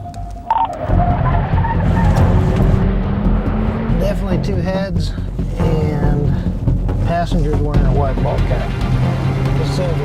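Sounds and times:
brief car tire squeal: 0:00.5 - 0:02.6
car engine revving loudly and pulling away: 0:00.5 - 0:10.0
speech: 0:07.2 - 0:10.0.

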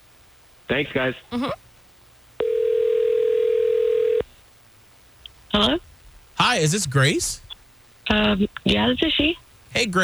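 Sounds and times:
speech: 0:00.7 - 0:01.6, 0:05.6 - 0:07.4, 0:08.1 - 0:10.0
telephone dial tone while placing a call: 0:02.4 - 0:04.2.

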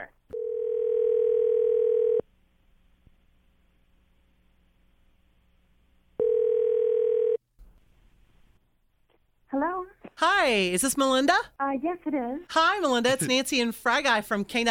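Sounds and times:
phone line ringback tone: 0:00.4 - 0:02.2, 0:06.2 - 0:07.4
speech: 0:10.5 - 0:14.6.

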